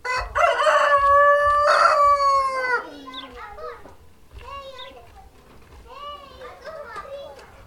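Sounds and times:
rooster crowing in a chicken backyard: 0.0 - 3.0
children playing outdoors in a chicken backyard: 0.2 - 7.6.

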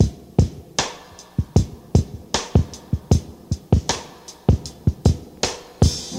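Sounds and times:
77 bpm breakbeat drum loop with kick tuned to G: 0.0 - 6.1.

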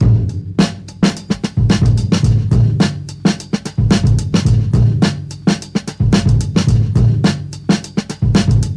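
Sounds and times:
109 bpm drum groove in A with kick tuned to A: 0.0 - 8.7.

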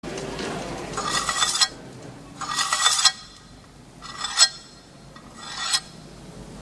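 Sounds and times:
blade scraping with echo: 1.0 - 1.8, 2.4 - 6.0.

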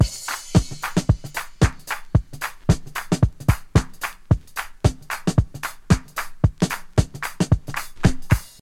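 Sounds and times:
112 bpm modern drum groove in A: 0.0 - 8.6.

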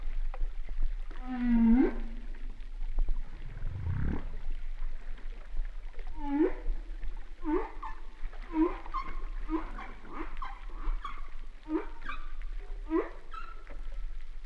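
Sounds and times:
low underwater hum: 0.0 - 14.4
humpback whale calls: 1.1 - 2.6, 3.2 - 4.6, 6.1 - 14.4.

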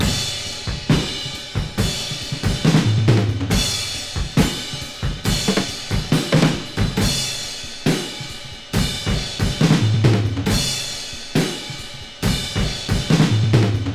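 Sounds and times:
drum loop in G sharp key: 0.0 - 13.9.

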